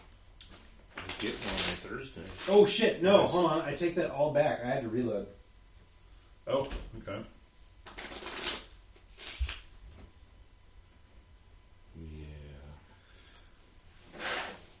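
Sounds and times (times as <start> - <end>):
speech: 1.2 - 5.4, 6.5 - 7.4
playing cards being shuffled in the hand: 7.8 - 9.7.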